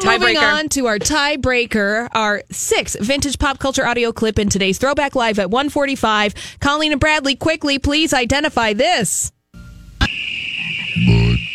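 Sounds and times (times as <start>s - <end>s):
speech: 0.1s - 9.4s, 11.0s - 11.2s
steady high-pitched whine of nighttime ambience: 9.6s - 11.5s
deep throaty frog croak from a beer commercial: 10.0s - 11.5s.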